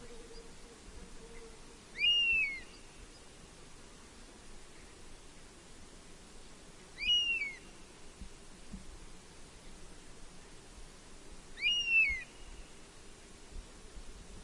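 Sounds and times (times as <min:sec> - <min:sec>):
faint hiss: 0:00.0 - 0:14.4
honey buzzard whistled calls: 0:02.0 - 0:02.6.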